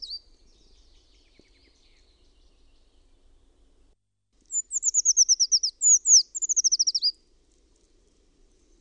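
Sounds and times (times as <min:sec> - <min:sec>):
Eurasian treecreeper song of thin high phrases: 0:00.0 - 0:03.2, 0:04.5 - 0:07.2
faint bird chirping: 0:00.0 - 0:07.3, 0:08.1 - 0:08.7.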